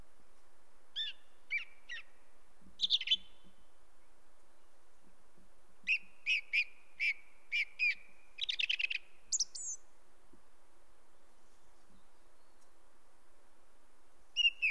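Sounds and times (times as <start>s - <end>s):
song thrush singing: 0.9s - 4.9s, 5.8s - 9.9s, 11.6s - 12.8s, 14.3s - 14.7s.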